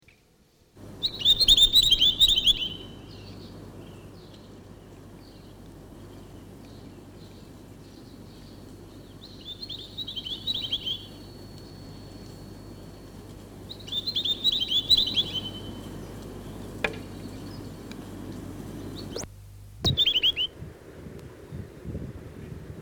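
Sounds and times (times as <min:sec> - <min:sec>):
Chatham Island tomtit song: 0:00.9 - 0:19.3, 0:19.9 - 0:20.5.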